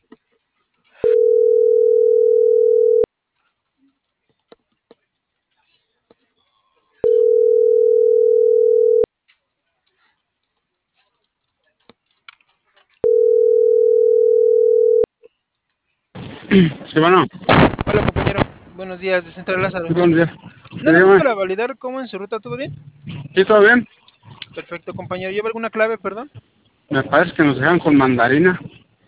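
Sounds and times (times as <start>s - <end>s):
telephone line tone hums while a number is dialed: 1.0s - 3.1s, 7.0s - 9.1s, 13.0s - 15.1s
speech: 16.6s - 24.0s, 24.6s - 28.7s.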